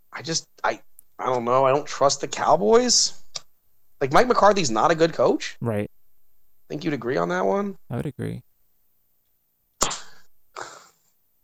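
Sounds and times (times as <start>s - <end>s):
speech: 0.2s - 3.2s, 4.0s - 5.9s, 6.7s - 8.5s
hand slapping a leg: 9.8s - 10.1s.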